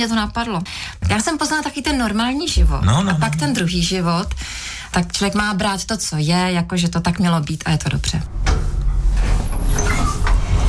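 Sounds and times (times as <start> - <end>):
speech: 0.0 - 8.5
elevator doors sliding open in a high-rise building in Prague: 8.3 - 10.6.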